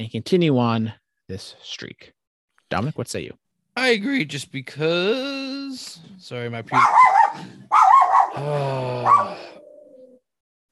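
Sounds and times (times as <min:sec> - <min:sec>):
speech: 0:00.0 - 0:07.7, 0:08.4 - 0:09.5
dog barking: 0:06.8 - 0:08.4, 0:09.0 - 0:09.4.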